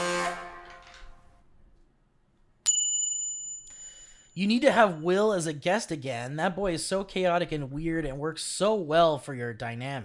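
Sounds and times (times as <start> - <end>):
bicycle bell ringing: 2.7 - 5.0
speech: 4.4 - 10.0.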